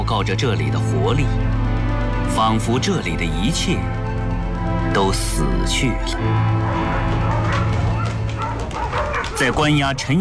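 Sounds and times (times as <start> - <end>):
speech: 0.1 - 1.6, 2.3 - 4.0, 4.9 - 7.7, 9.4 - 10.1
police dogs barking and yelping in a prison camp corridor: 6.4 - 9.8.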